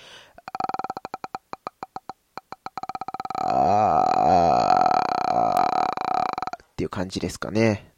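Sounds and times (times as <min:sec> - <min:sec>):
vocal fry creaky glottal clicks and low-pitched creaky voice: 0:00.3 - 0:06.6
speech: 0:06.9 - 0:07.9.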